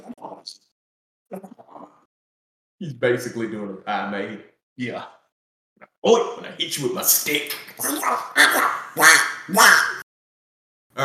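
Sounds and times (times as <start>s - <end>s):
speech: 2.8s - 5.2s, 6.0s - 10.0s
man doing a raspy squawking cartoon duck voice: 7.8s - 10.0s.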